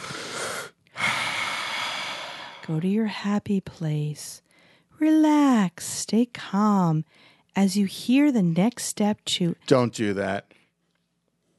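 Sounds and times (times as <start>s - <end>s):
person taking a deep breath: 0.0s - 2.7s
speech: 2.7s - 4.4s, 5.0s - 10.6s.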